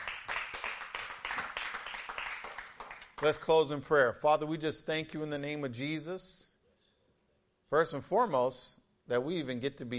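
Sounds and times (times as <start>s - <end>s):
church audience clapping: 0.0s - 3.5s
speech: 3.2s - 6.4s, 7.7s - 9.9s.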